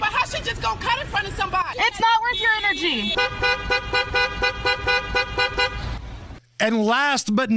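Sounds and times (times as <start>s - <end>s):
speech: 0.3s - 5.1s, 6.6s - 7.5s
novelty car horn blaring a rapid bouncing melody: 2.0s - 6.0s.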